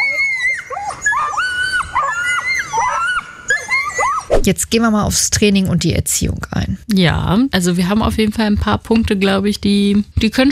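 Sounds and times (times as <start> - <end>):
Nova Scotia duck tolling retriever's loud shrill scream: 0.0 - 4.4
speech: 4.5 - 10.5.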